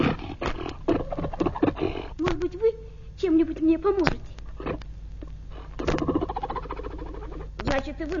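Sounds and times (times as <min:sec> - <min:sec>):
fur seals barking and roaring in a loud chorus: 0:00.0 - 0:02.2, 0:05.5 - 0:07.6
speech: 0:03.7 - 0:04.2, 0:07.9 - 0:08.1.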